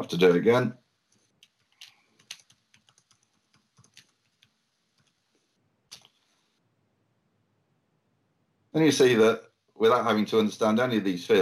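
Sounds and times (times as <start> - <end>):
speech: 0.0 - 0.8, 8.8 - 11.4
computer keyboard typing of a search: 1.3 - 5.2.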